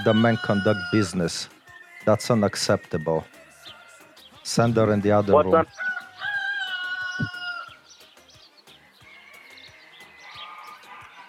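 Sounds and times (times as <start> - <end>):
rooster crowing: 0.0 - 1.3, 3.2 - 4.1, 5.6 - 7.8, 9.0 - 11.2
speech: 0.0 - 3.4, 4.5 - 5.9.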